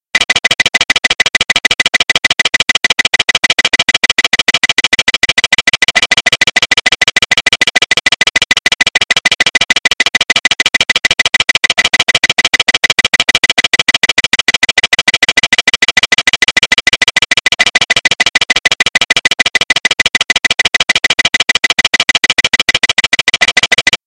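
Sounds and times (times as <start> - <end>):
overspeed clacker: 0.1 - 24.0.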